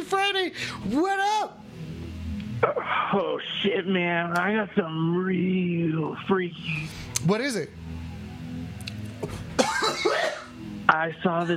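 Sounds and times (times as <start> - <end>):
speech: 0.1 - 1.2, 2.6 - 7.8, 9.8 - 11.5
person coughing: 9.6 - 10.6.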